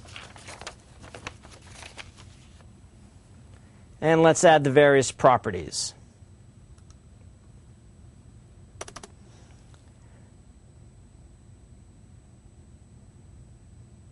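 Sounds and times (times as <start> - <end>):
steady low hiss: 0.0 - 14.1
speech: 4.0 - 6.0
typing on a computer keyboard: 8.8 - 9.1.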